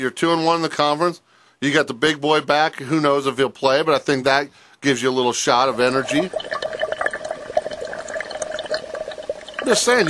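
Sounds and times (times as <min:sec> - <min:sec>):
speech: 0:00.0 - 0:06.6, 0:09.7 - 0:10.0
water bubbling in a water bong: 0:05.5 - 0:10.0.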